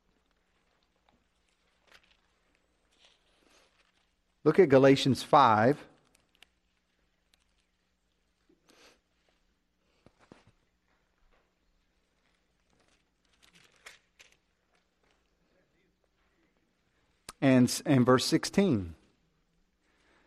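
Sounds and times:
many Bible pages turning: 0:00.0 - 0:04.8, 0:05.9 - 0:15.4
speech: 0:04.4 - 0:05.9, 0:17.7 - 0:19.0.

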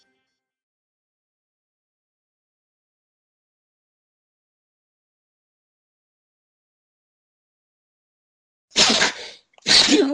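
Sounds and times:
loud sneeze brought on by the cold: 0:08.8 - 0:10.1.

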